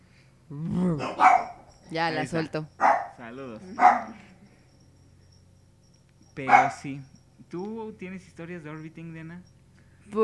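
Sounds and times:
speech: 0.5 - 1.3, 1.9 - 4.3, 6.4 - 10.2
dog barking muffled with ball in mouth: 0.9 - 1.7, 2.8 - 4.4, 6.4 - 7.1.

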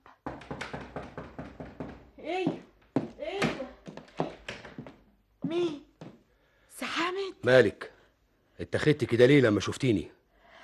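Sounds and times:
loud insistent knocks on an apartment door: 0.2 - 2.1
speech: 2.3 - 2.7, 5.5 - 5.9, 7.1 - 7.9, 8.6 - 10.2.

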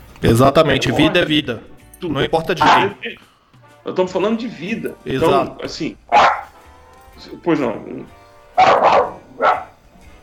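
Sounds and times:
speech: 0.2 - 3.3, 3.9 - 6.4, 7.2 - 9.6
dog barking: 2.6 - 3.0, 6.1 - 6.6, 8.6 - 9.8.

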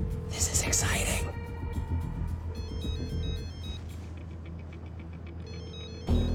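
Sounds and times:
steady low rumble of a busy, noisy space: 0.0 - 6.3
speech: 0.4 - 1.4
mobile phone ringtone with short high electronic tones: 2.6 - 3.8, 5.5 - 6.3.

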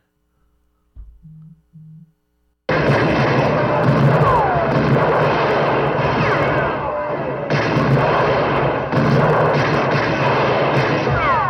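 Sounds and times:
short low beeps: 1.1 - 2.1
chaotic battle noise: 2.7 - 11.4
dense barrage of gunshots in a western movie scene: 2.7 - 11.4.

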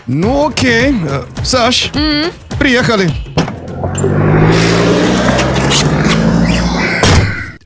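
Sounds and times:
speech: 0.1 - 4.7
car engine humming: 0.4 - 7.5.

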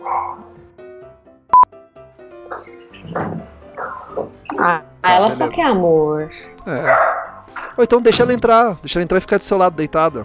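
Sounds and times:
dog barking: 0.0 - 0.5, 2.5 - 4.4, 6.8 - 7.8
speech: 2.6 - 3.6, 4.6 - 7.1, 7.8 - 10.2.

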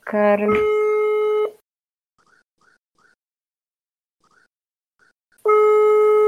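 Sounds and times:
ringing tone of an unanswered mobile phone call: 0.5 - 1.6, 5.4 - 6.2.

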